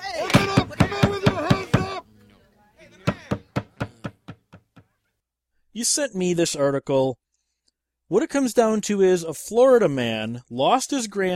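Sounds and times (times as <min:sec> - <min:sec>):
heavy pounding on a door: 0:00.3 - 0:02.0, 0:03.1 - 0:04.8
speech: 0:05.8 - 0:07.2, 0:08.1 - 0:11.3.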